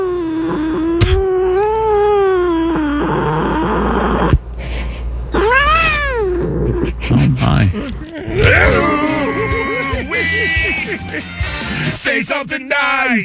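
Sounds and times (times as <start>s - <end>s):
cat yowling in long meows: 0.0s - 10.3s
laughter: 6.8s - 12.0s.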